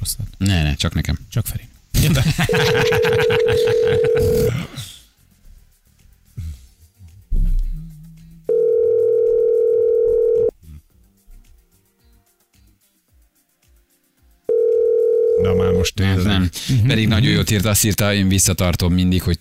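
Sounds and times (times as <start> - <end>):
speech: 0.0 - 4.9, 15.9 - 19.4
laughter: 2.0 - 4.7
telephone ringback tone of an outgoing call: 2.5 - 4.5, 8.5 - 10.5, 14.5 - 15.8.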